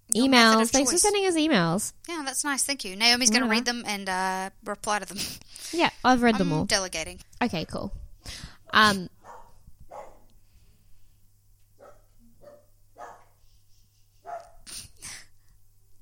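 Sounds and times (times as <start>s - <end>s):
low steady hum: 0.0s - 16.0s
speech: 0.2s - 9.1s
guard-dog-like dog barking in an apartment building: 9.2s - 10.3s, 11.8s - 13.4s, 14.2s - 14.6s.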